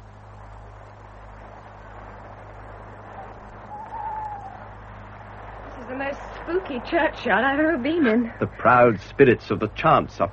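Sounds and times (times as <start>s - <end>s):
steady low hum and hiss: 0.0s - 10.3s
owl hooting in a churchyard: 3.0s - 4.8s
speech: 5.9s - 10.3s.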